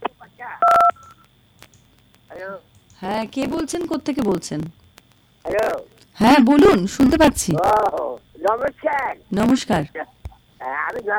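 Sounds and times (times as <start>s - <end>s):
telephone call connecting with a two-tone electronic beep: 0.6s - 1.2s
speech: 2.4s - 4.8s, 5.4s - 11.1s.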